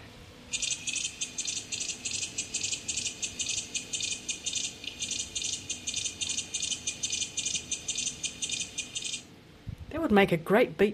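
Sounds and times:
cicada chirping: 0.5 - 9.3
speech: 10.1 - 10.9.

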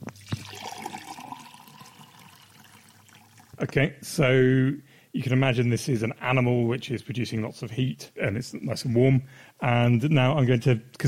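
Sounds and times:
warm water pouring from a pot into two glasses: 0.0 - 3.6
speech: 3.6 - 11.0.

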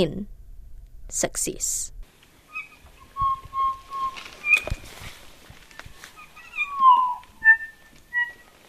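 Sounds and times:
speech: 0.0 - 0.4, 1.1 - 2.0
rustling and clicks: 2.2 - 8.6
two juvenile kokako calling with organ-like and croaky notes: 2.4 - 8.6.

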